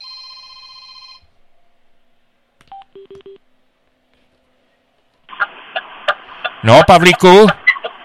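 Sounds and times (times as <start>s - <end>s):
incoming phone call ringing with a steady electronic tone: 0.0s - 1.3s
speech: 6.6s - 7.6s.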